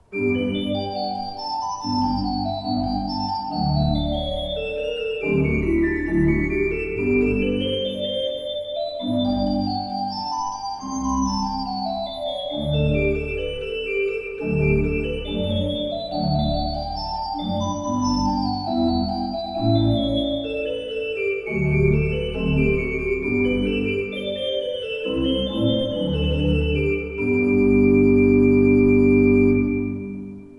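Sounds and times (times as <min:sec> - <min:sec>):
pipe organ: 0:00.0 - 0:30.5.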